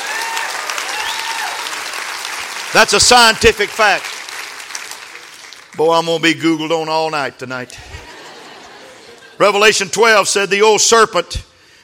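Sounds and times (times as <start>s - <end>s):
audience clapping hands: 0.0s - 6.4s
speech: 2.7s - 4.1s, 5.8s - 7.9s, 9.4s - 11.5s
laughter: 7.7s - 9.4s.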